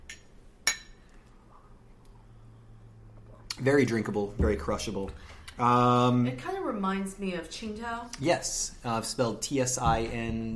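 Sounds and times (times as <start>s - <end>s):
glasses of Asian premium lager beer clinking in a toast: 0.0s - 1.1s
speech: 3.6s - 10.5s.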